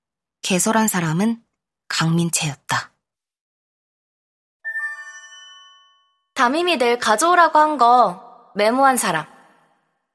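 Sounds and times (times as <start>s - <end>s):
speech: 0.5s - 1.4s, 2.0s - 2.9s, 6.4s - 9.3s
mobile phone group chat notification chime: 4.7s - 6.4s.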